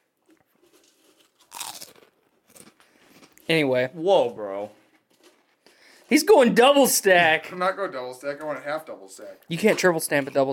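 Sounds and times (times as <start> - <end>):
chewing crunches of potato chips: 0.0 - 3.6, 4.7 - 5.7
potato chips being bitten and crunching: 0.1 - 6.1
speech: 3.5 - 4.8, 6.1 - 10.5.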